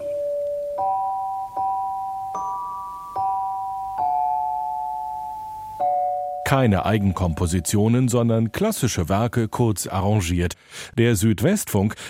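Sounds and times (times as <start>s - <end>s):
radio station interval signal of bell-like chime notes: 0.0s - 8.0s
speech: 6.5s - 12.0s.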